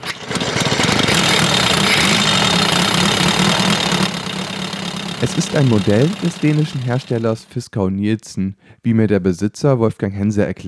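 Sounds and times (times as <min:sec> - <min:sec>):
vintage Danish motorcycle engine running at a classic vehicle meet: 0:00.0 - 0:07.5
speech: 0:05.2 - 0:10.6.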